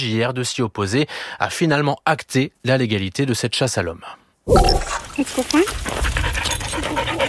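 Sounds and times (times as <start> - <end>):
speech: 0.0 - 6.3
dog panting rapidly and heavily: 5.8 - 7.2.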